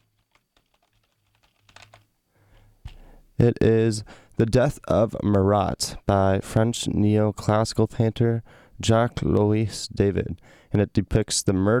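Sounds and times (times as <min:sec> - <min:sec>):
typing on a computer keyboard: 0:00.0 - 0:02.0
speech: 0:03.4 - 0:11.7.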